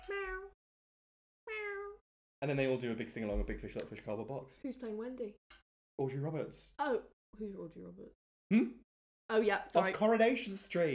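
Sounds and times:
person's voice imitating a cat's meow: 0.0 - 0.6, 1.5 - 2.0
speech: 2.4 - 10.9.

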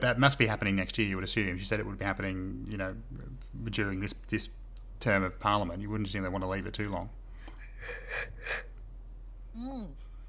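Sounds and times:
speech: 0.0 - 7.2, 7.8 - 8.7, 9.6 - 10.0
soft yawn: 9.5 - 10.2.

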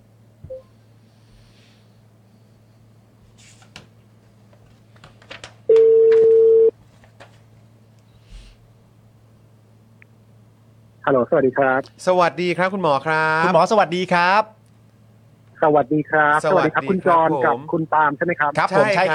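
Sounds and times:
constant low hum: 0.0 - 19.1
telephone ringing tone: 5.7 - 6.7
speech: 11.1 - 14.5, 15.6 - 19.1.

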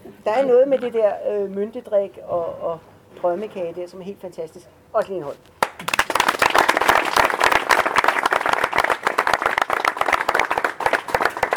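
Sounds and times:
speech: 0.2 - 6.0
crowd applauding with many hands clapping: 5.6 - 11.5.

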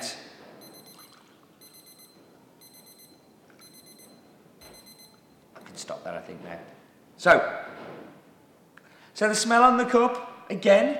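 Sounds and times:
kitchen timer alarm beeping: 0.6 - 5.3
speech: 5.8 - 7.8, 9.2 - 10.9.

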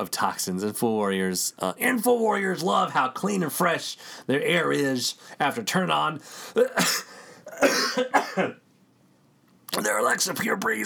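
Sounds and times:
speech: 0.0 - 8.6, 9.8 - 10.8
harsh coughing with a throaty rasp: 6.4 - 8.6.

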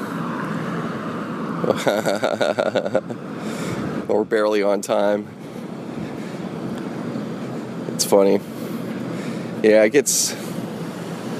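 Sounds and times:
busy morning commuter car traffic passing: 0.0 - 11.3
laughter: 1.6 - 3.2
speech: 1.6 - 3.5, 4.1 - 5.4, 8.0 - 8.5, 9.6 - 10.5.

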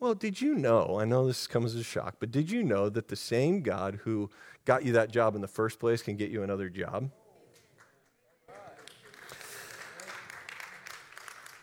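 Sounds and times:
speech: 0.1 - 7.2
audience clapping and cheering: 7.8 - 11.6.

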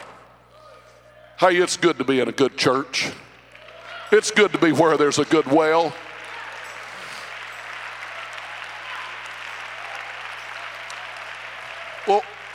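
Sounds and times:
speech: 1.4 - 3.2, 4.1 - 6.1
audience clapping: 3.4 - 12.5.

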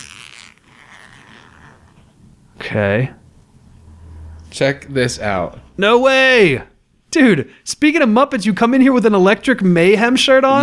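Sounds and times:
zipper on a clothing sleeve being undone: 0.0 - 2.4
speech: 2.7 - 3.2, 4.6 - 10.6.

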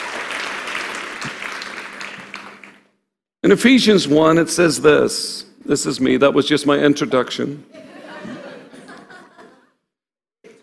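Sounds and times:
room full of people clapping: 0.0 - 3.0
speech: 3.4 - 7.9
laughter: 7.7 - 9.7.

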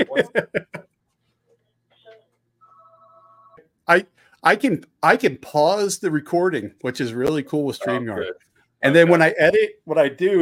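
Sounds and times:
laughter: 0.0 - 0.8
speech: 0.1 - 0.6, 3.9 - 10.4
phone ringing with a steady electronic tone: 2.0 - 3.6, 7.8 - 8.4.

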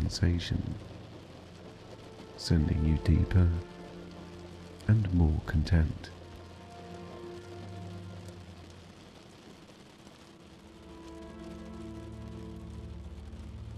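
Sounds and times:
steady rain pattering on a window: 0.0 - 13.7
speech: 0.1 - 0.9, 2.4 - 3.7, 4.9 - 6.2.

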